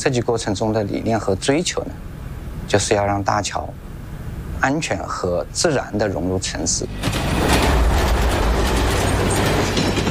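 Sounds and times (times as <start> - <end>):
speech: 0.0 - 3.8, 4.6 - 7.6
fast train rushing past on railway tracks: 6.7 - 10.0.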